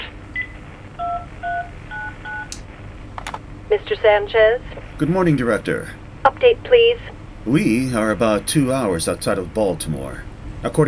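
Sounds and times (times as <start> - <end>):
hiss: 0.0 - 10.8
telephone keypad tones from dialing an extension: 0.4 - 2.6
speech: 3.9 - 10.8.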